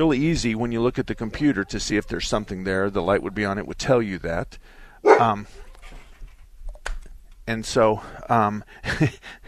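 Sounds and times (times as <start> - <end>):
speech: 0.0 - 5.6, 7.5 - 9.4
dog barking at someone at the door: 5.0 - 5.4.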